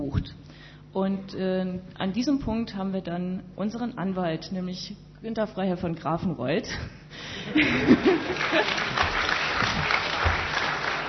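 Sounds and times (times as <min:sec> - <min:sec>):
speech: 0:01.0 - 0:09.2
people laughing: 0:07.5 - 0:11.0
audience applause: 0:07.8 - 0:11.0
people cheering: 0:08.3 - 0:11.0.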